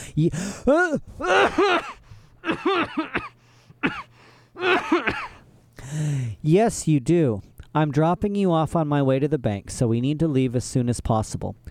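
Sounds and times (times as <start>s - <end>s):
speech: 0.2s - 4.0s, 5.9s - 11.6s
man coughing with husky bursts: 0.4s - 5.4s
man clearing throat: 0.7s - 5.4s.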